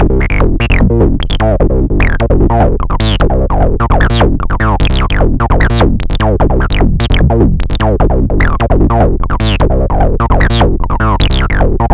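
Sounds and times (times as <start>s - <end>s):
gentle bass: 0.0s - 11.9s.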